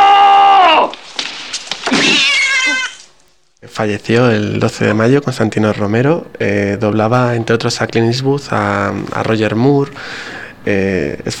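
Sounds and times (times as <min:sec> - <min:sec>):
cat meowing: 0:01.9 - 0:03.1
speech: 0:03.8 - 0:11.3.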